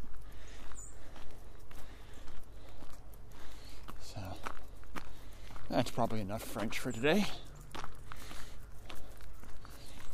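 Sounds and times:
footsteps climbing a big hill outdoors: 0.0s - 10.1s
speech: 5.7s - 7.5s.

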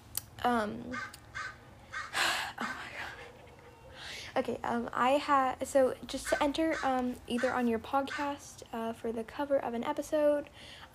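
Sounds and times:
speech: 0.4s - 1.2s, 4.4s - 10.9s
crow cawing harshly: 0.9s - 2.2s, 6.3s - 8.3s.

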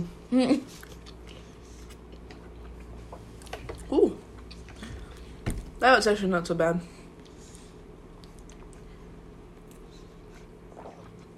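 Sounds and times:
speech: 0.0s - 0.9s, 5.8s - 7.0s
quiet room hum: 0.0s - 11.3s
soft chewing of food with crunches: 0.7s - 5.3s, 8.1s - 11.3s.

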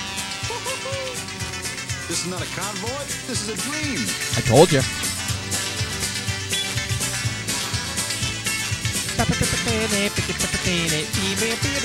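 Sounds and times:
steel guitar music with a full band: 0.0s - 11.8s
laughter: 0.4s - 1.4s
speech: 2.1s - 5.1s, 9.2s - 11.8s.

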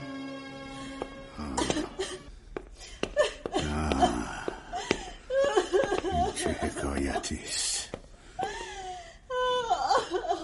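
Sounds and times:
woman crying and sobbing: 1.3s - 7.4s, 8.3s - 10.4s.

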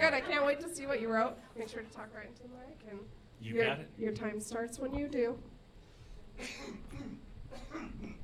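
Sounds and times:
speech: 0.1s - 5.6s, 6.4s - 8.2s
person coughing: 6.4s - 8.2s.

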